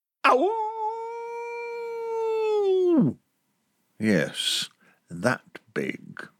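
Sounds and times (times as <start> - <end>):
human voice imitating a wolf howl: 0.2 - 3.2
speech: 0.3 - 0.6, 3.0 - 3.2, 4.0 - 6.3.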